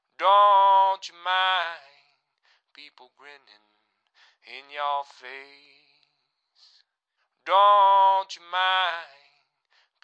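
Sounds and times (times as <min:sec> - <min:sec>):
blues vocal on old radio: 0:00.2 - 0:01.9, 0:04.4 - 0:05.8, 0:07.5 - 0:09.3.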